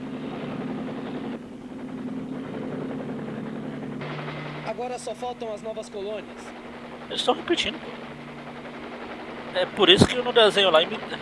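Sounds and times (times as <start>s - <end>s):
helicopter flying with rotor chop and engine whine: 0.0s - 11.2s
speech: 4.7s - 8.0s, 9.5s - 11.2s.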